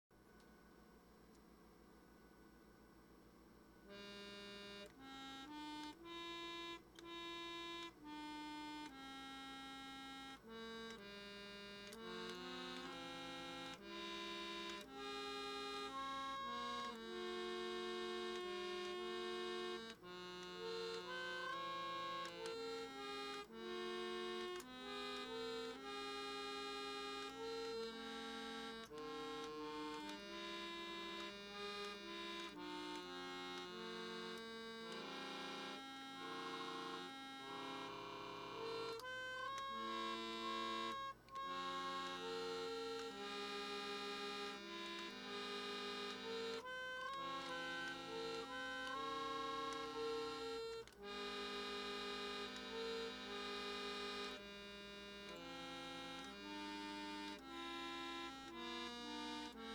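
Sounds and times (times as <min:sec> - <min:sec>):
Magnus electric organ playing an invention, circa 1947: 0:03.9 - 0:59.7.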